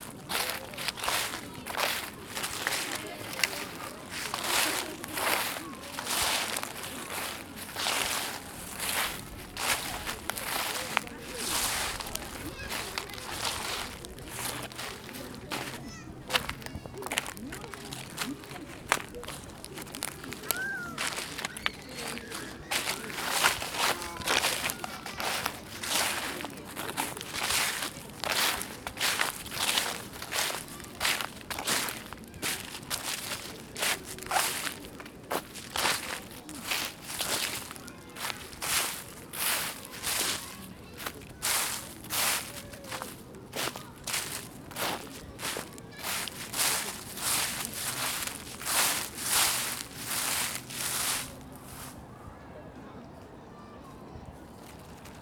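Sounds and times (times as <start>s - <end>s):
fallen leaves in Shinjuku Gyoen: 0.0s - 52.0s.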